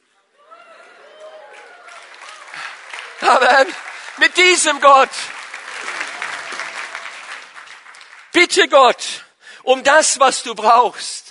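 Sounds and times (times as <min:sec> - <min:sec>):
audience cheering: 0:00.4 - 0:08.3
audience clapping: 0:01.1 - 0:09.0
speech: 0:03.2 - 0:05.4, 0:08.4 - 0:11.2.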